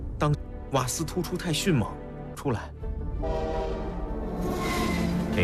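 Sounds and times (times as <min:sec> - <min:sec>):
speech: 0:00.2 - 0:03.4
fast train horn blaring: 0:03.2 - 0:05.4.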